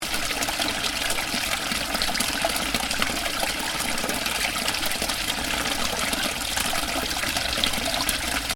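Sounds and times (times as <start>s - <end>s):
water running from pipe into stream: 0.0s - 8.5s.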